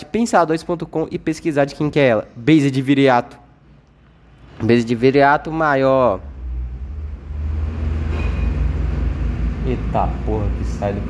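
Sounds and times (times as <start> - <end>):
speech: 0.0 - 3.4, 4.6 - 6.3, 9.7 - 11.0
heavy truck rumbling past outside: 6.0 - 11.0.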